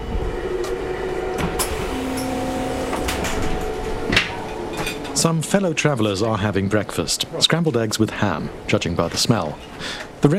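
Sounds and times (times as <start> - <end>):
sliding door to the restaurant coach rolling open on a moving train: 0.0 - 7.0
low rumble of a moving train carriage: 0.0 - 10.3
sharp clunks and rattles of a train coach door: 1.3 - 5.2
speech: 5.2 - 10.3.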